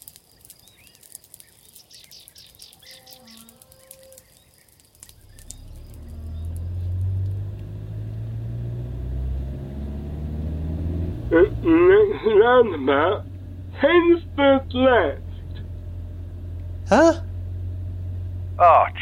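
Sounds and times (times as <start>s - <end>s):
birds chirping: 0.0s - 8.5s, 9.8s - 19.0s
high chirps: 0.5s - 7.1s
stolen car driving along the road with a steady low rumble: 2.4s - 19.0s
engine of a stolen car starting up: 5.0s - 19.0s
speech: 12.2s - 15.2s, 16.9s - 17.2s.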